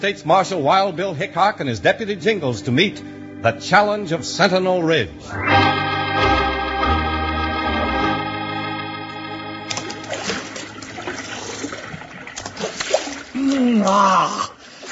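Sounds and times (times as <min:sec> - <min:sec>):
speech: 0:00.0 - 0:06.3, 0:13.8 - 0:14.5
music: 0:00.0 - 0:11.8
water splashing and sloshing in a mountain stream: 0:09.7 - 0:14.8.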